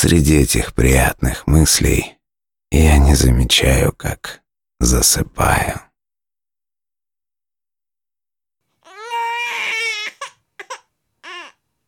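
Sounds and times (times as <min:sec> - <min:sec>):
speech: 0:00.0 - 0:05.9
baby wailing loudly with sobs and whimpers: 0:08.8 - 0:11.6.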